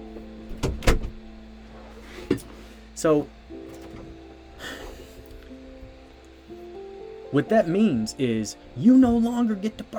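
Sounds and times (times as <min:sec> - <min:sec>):
faint steady hum: 0:00.0 - 0:09.9
wooden door being pushed shut with clunks and a thud: 0:00.5 - 0:01.2
speech: 0:02.3 - 0:03.4, 0:07.3 - 0:09.9.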